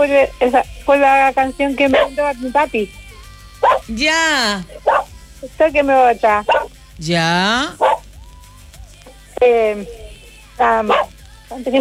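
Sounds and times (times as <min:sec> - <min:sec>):
speech: 0:00.0 - 0:03.0, 0:03.6 - 0:07.9, 0:09.4 - 0:10.0, 0:10.6 - 0:11.7
small dog yapping with sharp high-pitched barks: 0:01.8 - 0:02.2, 0:03.6 - 0:04.0, 0:04.8 - 0:05.1, 0:06.4 - 0:06.7, 0:07.7 - 0:08.0, 0:10.6 - 0:11.2
faint thin whine of a small dog: 0:01.9 - 0:02.2, 0:03.6 - 0:03.9, 0:10.7 - 0:11.2.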